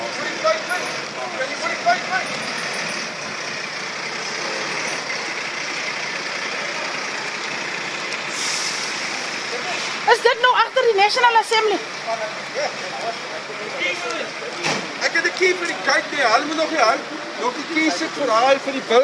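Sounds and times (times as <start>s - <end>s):
fire truck idling engine rumble: 0.0s - 19.0s
speech: 10.9s - 19.0s.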